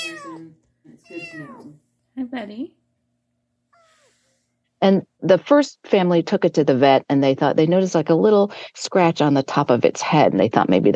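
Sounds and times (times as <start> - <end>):
black and white tuxedo kitten mewing in a driveway: 0.0 - 1.8, 3.8 - 4.3
speech: 0.5 - 2.8, 4.8 - 10.9.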